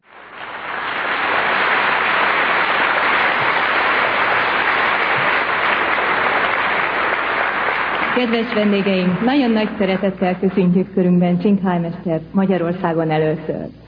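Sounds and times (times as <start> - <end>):
large audience applause welcoming a speaker: 0.0 - 10.5
speech: 8.2 - 13.8.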